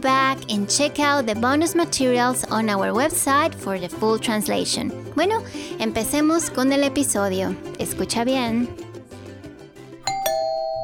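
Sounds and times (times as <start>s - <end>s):
speech: 0.0s - 8.9s
doorbell ding-dong chime: 10.1s - 10.8s.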